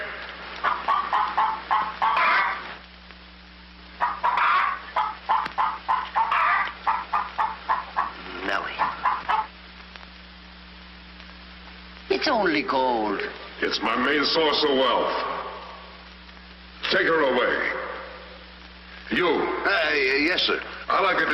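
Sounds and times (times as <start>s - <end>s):
faint low hum: 0.0s - 21.3s
hen clucking while laying an egg: 0.6s - 2.7s, 4.0s - 9.5s
speech: 12.5s - 15.3s, 16.9s - 17.8s, 19.2s - 21.3s.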